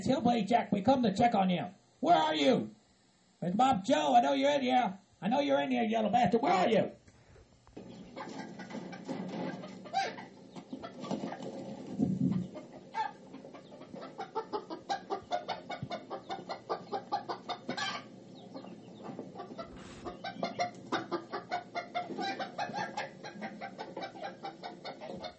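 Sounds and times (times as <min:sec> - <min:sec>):
speech: 0:00.0 - 0:02.8, 0:03.4 - 0:07.0
chickens clucking agitatedly: 0:07.8 - 0:25.3.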